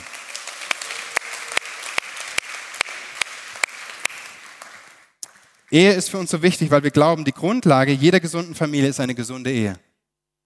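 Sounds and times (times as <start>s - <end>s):
large audience applauding: 0.0s - 6.0s
sharp evenly spaced claps in a regular beat: 0.0s - 6.4s
speech: 5.7s - 9.9s.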